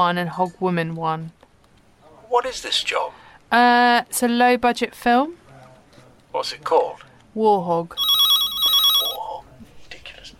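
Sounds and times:
speech: 0.0s - 1.5s, 2.3s - 5.4s, 6.3s - 8.0s
telephone ringing with a bright electronic tone: 8.0s - 9.4s.

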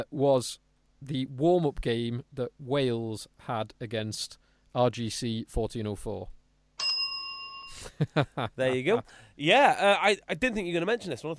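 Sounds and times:
speech: 0.0s - 6.4s, 7.7s - 11.3s
synthetic electronic bell ringing: 6.8s - 8.0s.

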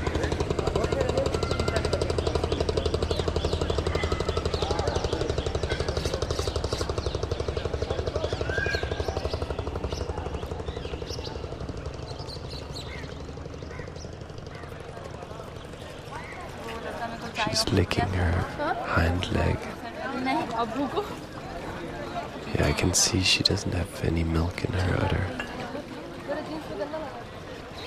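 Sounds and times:
boat engine chugging on a river: 0.0s - 27.8s
speech: 17.4s - 19.7s, 20.6s - 21.1s, 22.6s - 25.4s.

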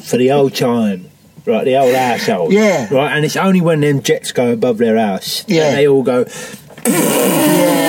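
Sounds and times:
speech: 0.0s - 7.8s
voice imitating a fart with a buzzing blow: 6.8s - 7.8s.

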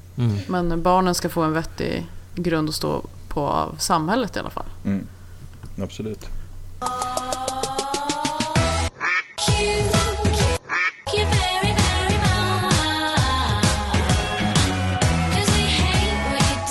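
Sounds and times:
speech: 0.2s - 5.2s, 5.8s - 7.0s
music-like bed: 6.8s - 16.6s
duck quacking sound effect: 8.8s - 9.4s, 10.6s - 11.0s.

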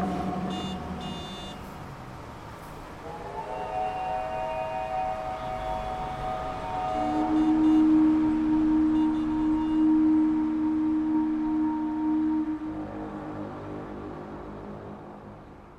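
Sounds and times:
low drawn-out wail: 0.0s - 1.6s, 3.0s - 14.1s
sustained siren-like tones in an avant-garde musical performance: 0.0s - 1.7s, 3.0s - 13.5s
rumbling noisy background: 0.0s - 15.7s.

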